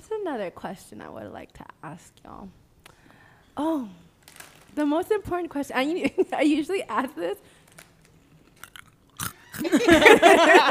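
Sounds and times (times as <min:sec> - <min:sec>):
speech: 0:00.3 - 0:02.6, 0:03.6 - 0:04.1, 0:04.7 - 0:07.6, 0:09.6 - 0:10.6
hot Cheetos being bitten and chewed: 0:08.4 - 0:09.6
laughter: 0:09.6 - 0:10.6.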